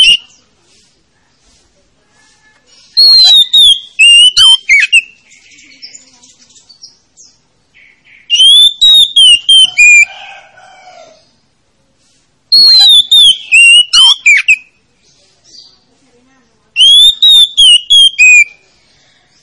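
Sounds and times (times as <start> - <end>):
Oriental magpie-robin chattering: 0.0 - 0.5, 2.7 - 10.1, 12.5 - 15.8, 16.8 - 18.9
Oriental magpie-robin singing: 0.0 - 1.0, 2.2 - 10.1, 12.5 - 15.9, 16.5 - 19.4.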